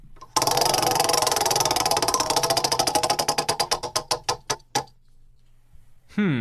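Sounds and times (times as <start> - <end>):
prize wheel spinning and ticking: 0.2 - 4.9.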